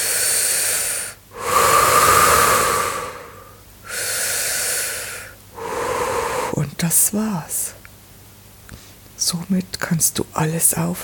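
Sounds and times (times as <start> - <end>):
deep breathing into the belly during a guided relaxation exercise: 0.0 - 6.6
speech: 6.9 - 7.8, 9.3 - 11.0.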